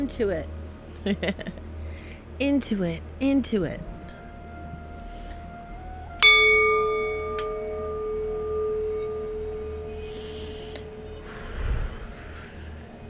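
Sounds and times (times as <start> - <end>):
speech: 0.0 - 1.6, 2.4 - 3.9
struck singing bowl ringing: 6.2 - 13.0.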